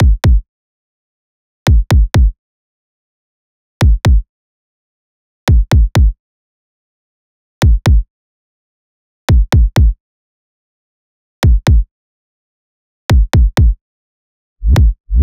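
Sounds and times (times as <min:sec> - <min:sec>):
pop kick drum loop: 0:00.0 - 0:00.4, 0:01.7 - 0:02.3, 0:03.8 - 0:04.2, 0:05.5 - 0:06.1, 0:07.6 - 0:08.0, 0:09.3 - 0:10.0, 0:11.4 - 0:11.8, 0:13.1 - 0:13.8, 0:14.6 - 0:15.2.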